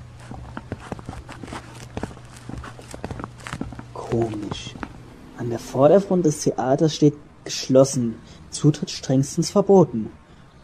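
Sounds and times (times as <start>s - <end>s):
footsteps walking along a narrow private lane beside a building: 0.0s - 5.0s
faint continuous low hum: 0.0s - 10.6s
speech: 4.1s - 4.8s, 5.4s - 10.2s.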